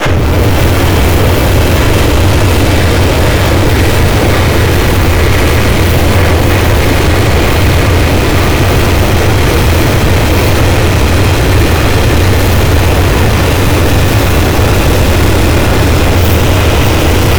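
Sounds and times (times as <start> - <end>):
garg beam starting up: 0.0 - 17.3.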